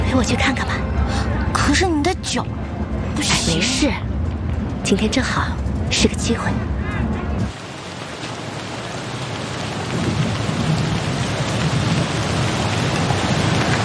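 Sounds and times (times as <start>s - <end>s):
steady rain: 0.0s - 13.8s
speech: 0.2s - 0.8s, 1.7s - 4.1s, 4.8s - 6.7s
deep loud thunder rumbling: 7.4s - 13.8s.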